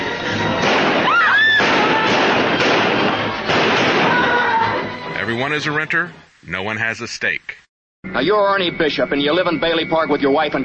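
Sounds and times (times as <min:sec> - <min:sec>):
loud dense old film soundtrack: 0:00.0 - 0:07.0
gunshots in an old film scene: 0:00.6 - 0:04.4
speech: 0:05.4 - 0:10.6.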